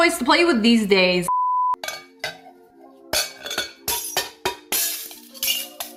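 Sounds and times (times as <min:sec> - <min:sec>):
speech: 0:00.0 - 0:01.4
glass being crushed: 0:03.2 - 0:05.9.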